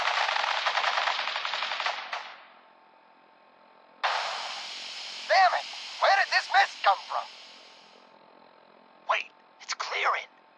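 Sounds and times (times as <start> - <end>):
police officers' gunfire: 0.0 - 2.6, 4.0 - 4.8
lingering hiss: 4.0 - 8.8.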